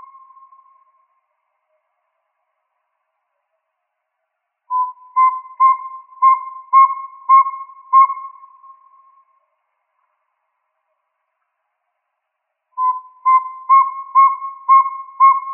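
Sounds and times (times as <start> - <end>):
Northern saw-whet owl whistled toots in Arizona: 4.7 - 8.8, 12.8 - 15.5.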